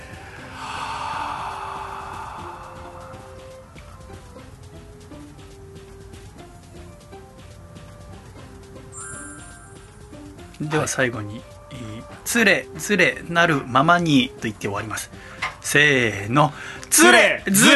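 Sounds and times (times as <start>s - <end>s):
deep breathing during a group breathing exercise: 0.0s - 4.6s, 15.1s - 15.6s, 16.5s - 16.8s
soft steady music: 0.0s - 17.7s
speech: 10.6s - 11.5s, 12.3s - 17.7s.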